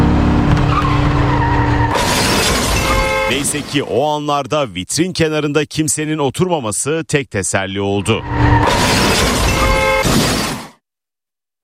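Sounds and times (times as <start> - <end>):
car engine roaring as driver hits the gas: 0.0 - 3.3, 8.0 - 9.2
car tires skidding in a shopping mall parking lot: 0.4 - 3.3
car crashing into a parked car and cafe: 0.4 - 3.8, 8.3 - 10.8
speech: 3.4 - 9.3.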